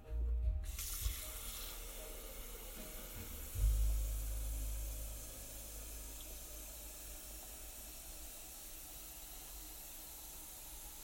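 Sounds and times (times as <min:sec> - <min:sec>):
tap water running into the water tank of a coffee machine: 0:00.6 - 0:11.0
low rumble: 0:02.0 - 0:08.0.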